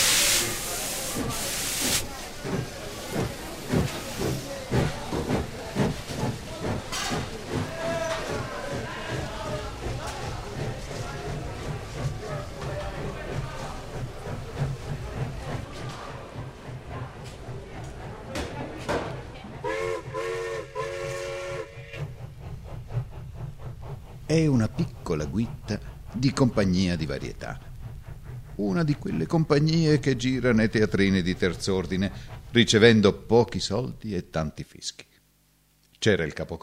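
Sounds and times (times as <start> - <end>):
hissing steam from an express train departing a platform: 0.0 - 17.0, 19.7 - 33.6
steam whistle of an express train departing a platform: 19.6 - 22.1
speech: 24.4 - 27.7, 28.6 - 35.1, 36.0 - 36.6.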